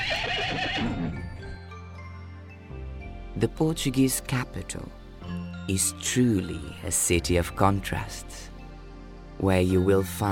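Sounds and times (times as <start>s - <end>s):
horse whinnying: 0.0s - 1.4s
speech: 3.4s - 8.5s, 9.4s - 10.3s.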